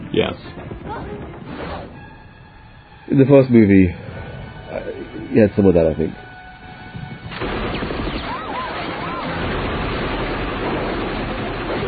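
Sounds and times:
speech: 0.2s - 2.0s, 3.1s - 4.1s, 4.7s - 6.2s
machine gun firing in a film action sequence: 7.3s - 11.8s.

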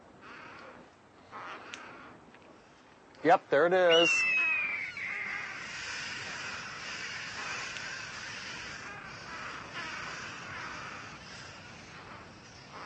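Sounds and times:
speech: 3.2s - 4.3s
parrot alarm squawks at a hawk: 3.9s - 7.6s.

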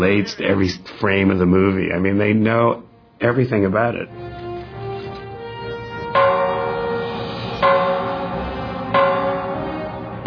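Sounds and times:
speech: 0.0s - 4.4s
bell ringing: 6.2s - 10.2s.

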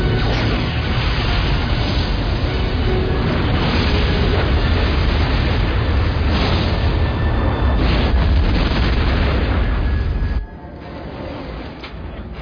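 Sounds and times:
starship's ram scoop being blown out in a roaring explosion: 0.2s - 10.4s.

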